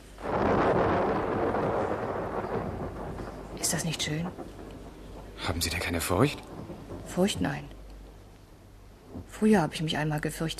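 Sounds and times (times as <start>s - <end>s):
thunder rumbling from a thunderstorm: 0.0s - 10.5s
speech: 3.6s - 4.6s, 5.4s - 6.5s, 7.1s - 7.8s, 9.3s - 10.5s.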